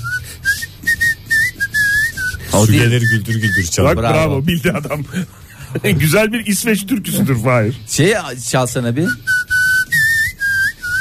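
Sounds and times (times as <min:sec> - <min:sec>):
person whistling a tune: 0:00.0 - 0:03.9, 0:09.0 - 0:10.9
low hum: 0:00.0 - 0:10.9
speech: 0:02.6 - 0:09.4
laughter: 0:03.8 - 0:07.8.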